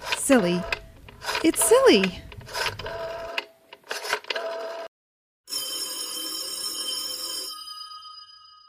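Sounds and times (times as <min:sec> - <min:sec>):
telephone dialing clicks: 0:00.0 - 0:04.9
speech: 0:00.3 - 0:00.8, 0:01.4 - 0:03.0.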